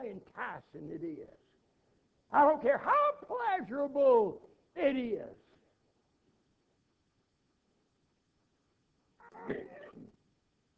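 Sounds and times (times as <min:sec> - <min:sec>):
speech: 0:00.0 - 0:01.5, 0:02.3 - 0:05.5, 0:09.4 - 0:09.8
man coughing: 0:09.4 - 0:10.2.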